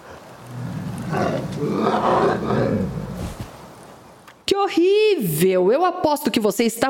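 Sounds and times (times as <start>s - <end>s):
bear growling and roaring: 0.0s - 3.4s
speech: 1.5s - 2.9s, 4.6s - 6.8s.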